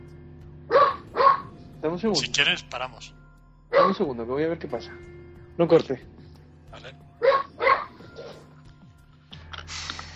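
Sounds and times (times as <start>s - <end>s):
dog barking: 0.7s - 1.6s, 3.7s - 4.1s, 7.2s - 8.5s
speech: 1.8s - 6.1s.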